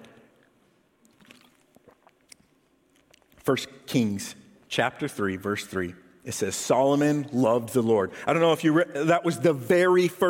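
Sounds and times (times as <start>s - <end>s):
person drinking water: 0.3s - 3.5s
speech: 3.4s - 10.2s.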